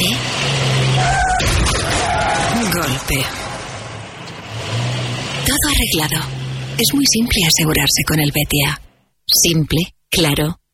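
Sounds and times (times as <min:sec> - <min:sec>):
car engine revving loudly: 0:00.0 - 0:08.0
speech: 0:05.8 - 0:10.6.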